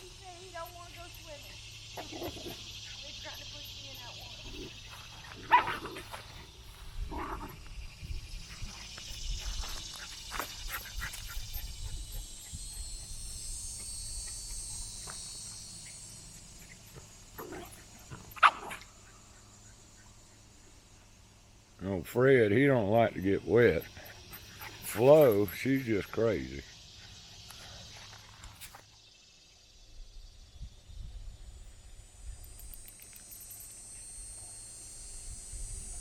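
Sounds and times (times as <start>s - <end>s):
steady hiss of outdoor noise on a farm: 0.0s - 35.9s
sharper dog yelps: 18.3s - 18.9s
speech: 22.0s - 24.0s, 25.0s - 26.7s.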